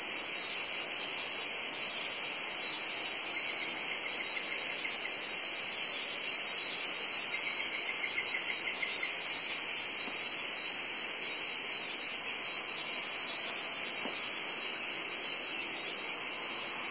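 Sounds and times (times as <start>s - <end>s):
cicadas producing a high hissing drone: 0.0s - 16.8s.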